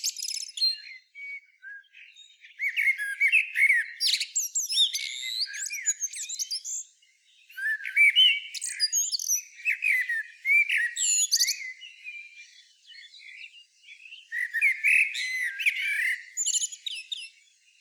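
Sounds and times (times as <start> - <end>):
common blackbird Turdus merula warbling fluty notes with squeaky twitters: 0.0 - 17.7.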